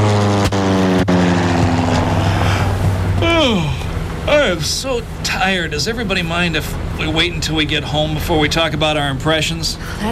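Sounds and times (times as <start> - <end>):
airplane engine drone in flight: 0.0 - 10.0
speech: 4.5 - 10.0.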